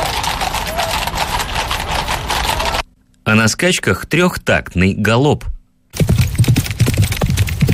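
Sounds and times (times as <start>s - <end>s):
hooves of a trotter horse trotting: 0.0s - 2.9s, 6.0s - 7.7s
speech: 3.3s - 6.1s.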